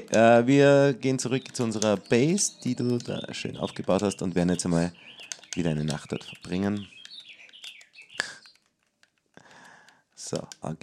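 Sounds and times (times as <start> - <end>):
speech: 0.0 - 7.0, 10.2 - 10.8
chirping bird clock trilling: 0.0 - 8.8
sharp click: 1.2 - 8.7.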